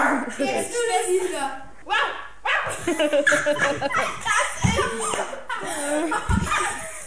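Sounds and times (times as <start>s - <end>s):
speech: 0.3s - 2.1s, 2.9s - 6.8s
other children laughing: 2.6s - 7.0s.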